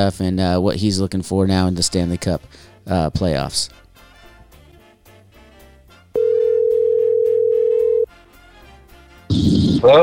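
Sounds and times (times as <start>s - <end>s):
speech: 0.0s - 3.8s, 9.3s - 10.0s
telephone tone as a call is placed and rings: 6.2s - 8.1s.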